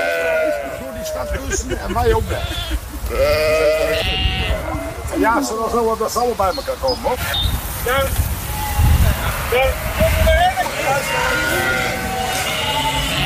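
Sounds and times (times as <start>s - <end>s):
flock of sheep bleating: 0.0s - 1.2s, 2.0s - 5.1s, 9.9s - 13.2s
low traffic rumble from passing vehicles: 0.1s - 13.2s
laughter: 0.6s - 5.4s.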